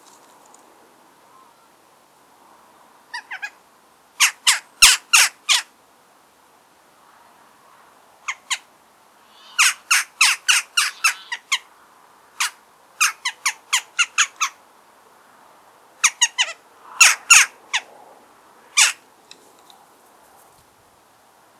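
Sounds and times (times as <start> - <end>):
Western Jackdaw Coloeus monedula calling: 3.1 - 3.6, 8.2 - 14.6, 16.0 - 17.9, 18.6 - 19.5.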